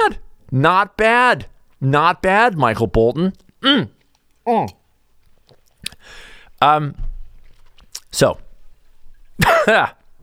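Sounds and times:
speech: 0:00.1 - 0:04.8, 0:06.0 - 0:07.1, 0:08.1 - 0:08.4, 0:09.4 - 0:10.0
rasping cough after drinking single malt scotch: 0:09.4 - 0:10.0.

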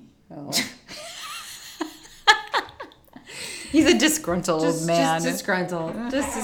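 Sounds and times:
speech: 0:03.7 - 0:06.4
dog grumbling: 0:04.6 - 0:06.4.

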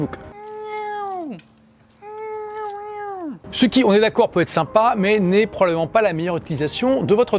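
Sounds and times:
speech: 0:00.0 - 0:00.3, 0:03.5 - 0:07.3
cat meowing: 0:00.3 - 0:03.4.

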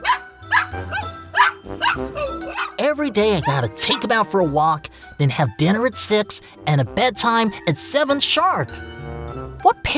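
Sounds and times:
puppy barking in short high-pitched yaps: 0:00.0 - 0:02.8
speech: 0:02.8 - 0:08.9, 0:09.6 - 0:09.9.

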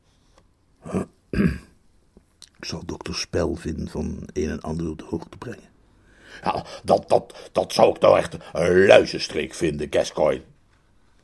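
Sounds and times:
throat-clearing coughs from a butler: 0:00.9 - 0:01.7
speech: 0:01.4 - 0:01.6, 0:02.7 - 0:05.7, 0:06.4 - 0:10.6.

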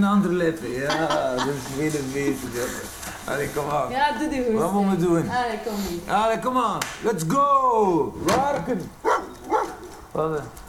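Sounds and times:
speech: 0:00.0 - 0:09.2, 0:10.2 - 0:10.6
laughter: 0:00.8 - 0:02.0
dogs barking at a large boarding kennel with high metal cages: 0:09.0 - 0:10.2.

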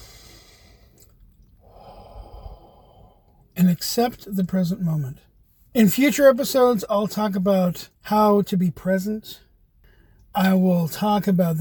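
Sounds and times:
deep breath: 0:00.0 - 0:03.4, 0:09.8 - 0:10.3
speech: 0:03.6 - 0:09.4, 0:10.3 - 0:11.6.

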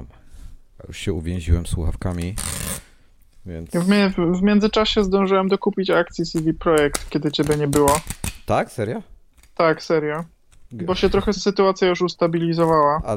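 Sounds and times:
speech: 0:00.8 - 0:02.8, 0:03.4 - 0:13.1
courier parcel torn open by hand: 0:06.8 - 0:08.5, 0:09.4 - 0:09.6.

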